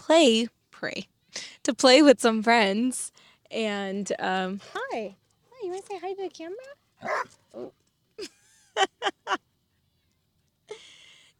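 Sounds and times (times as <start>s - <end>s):
speech: 0.1s - 9.4s
dog barking at a dog park: 7.0s - 7.3s.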